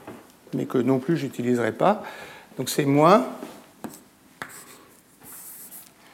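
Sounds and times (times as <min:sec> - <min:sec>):
low steady hiss: 0:00.0 - 0:06.1
speech: 0:00.5 - 0:03.5
faint writing strokes on a board during a lecture: 0:03.8 - 0:06.0.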